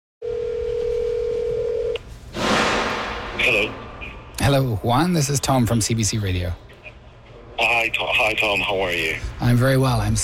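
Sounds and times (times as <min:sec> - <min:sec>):
telephone dial tone: 0:00.2 - 0:02.0
speech: 0:03.4 - 0:03.8, 0:04.4 - 0:06.7, 0:07.6 - 0:10.2.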